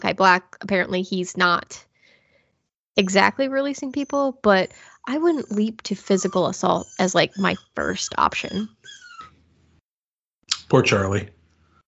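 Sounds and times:
speech: 0.1s - 1.9s, 3.0s - 9.0s, 10.7s - 11.4s
female puppy whining in her crate: 3.8s - 9.4s.

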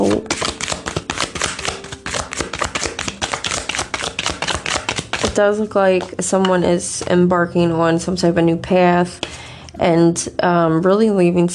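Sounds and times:
deck of tarot cards being shuffled: 0.0s - 6.5s
speech: 5.4s - 11.5s.

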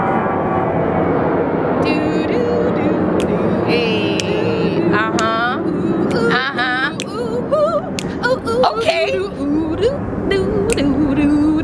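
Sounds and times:
airplane passing overhead: 0.0s - 11.6s.

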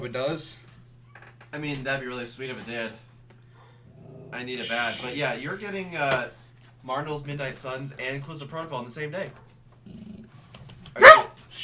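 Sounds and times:
speech: 0.0s - 0.7s, 1.5s - 3.1s, 4.3s - 10.1s
faint low hum: 0.0s - 11.6s
dog barking: 11.0s - 11.4s.

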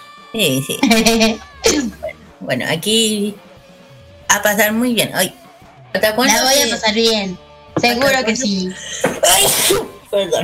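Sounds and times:
speech: 0.3s - 3.5s, 4.3s - 5.4s, 6.0s - 10.4s
laughter: 0.6s - 2.3s
person in Chile sneezing: 9.0s - 10.0s.

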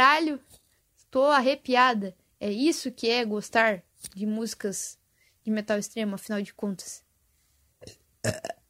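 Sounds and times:
speech: 1.1s - 7.0s, 7.8s - 8.6s
throaty burp: 7.8s - 8.6s.

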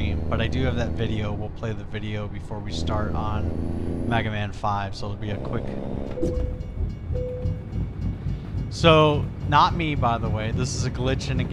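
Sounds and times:
video game train rumbling past a railroad crossing: 0.0s - 11.5s
speech: 0.3s - 7.3s, 8.7s - 11.5s
high bell-like railroad crossing signal: 6.1s - 11.5s.

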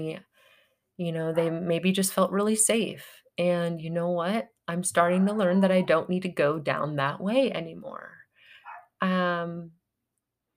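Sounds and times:
speech: 0.0s - 0.3s, 1.0s - 8.2s, 9.0s - 9.8s
small dog barking outside: 8.6s - 9.0s.

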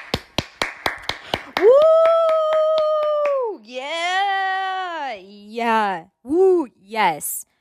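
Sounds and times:
single person clapping: 0.0s - 3.5s
person whooping: 1.6s - 4.8s
speech: 5.9s - 7.5s.

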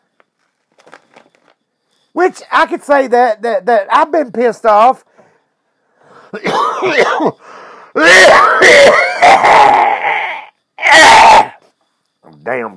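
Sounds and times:
speech: 2.2s - 5.1s, 6.3s - 9.8s, 12.4s - 12.7s
harsh raspy smoker's cough: 6.2s - 9.4s.

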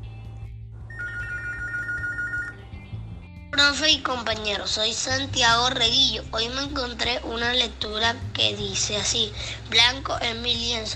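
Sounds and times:
telephone ringing with an electronic trill: 0.9s - 2.7s
speech: 3.6s - 10.9s.

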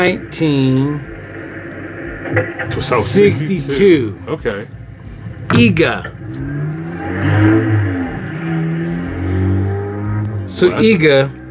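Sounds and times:
speech: 0.0s - 1.2s, 2.2s - 4.8s, 5.5s - 8.0s, 10.5s - 11.4s
small car engine revving and accelerating: 5.3s - 11.5s.

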